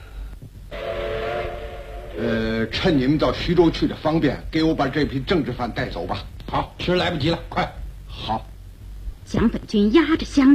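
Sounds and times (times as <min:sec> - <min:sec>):
train whistle beside an armored train at a railway station: 0:00.7 - 0:02.7
speech: 0:02.6 - 0:08.5, 0:09.3 - 0:10.5.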